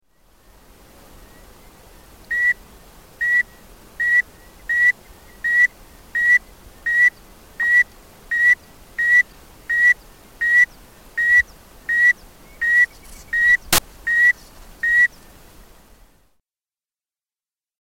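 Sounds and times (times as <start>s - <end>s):
Phrynopus laplacai frog: 3.2s - 15.1s.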